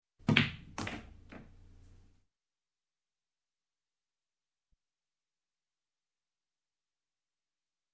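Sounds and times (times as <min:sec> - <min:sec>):
billiard balls hitting: 0:00.2 - 0:01.7.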